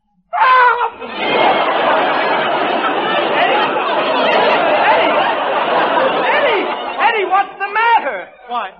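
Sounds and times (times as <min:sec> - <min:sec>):
man screaming: 0:00.3 - 0:01.0
laughter: 0:00.5 - 0:08.7.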